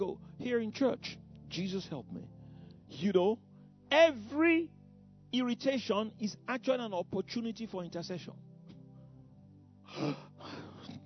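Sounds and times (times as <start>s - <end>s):
speech: 0.0s - 2.3s, 2.9s - 8.5s, 9.9s - 10.6s
audience member gasping in a church: 9.9s - 11.0s.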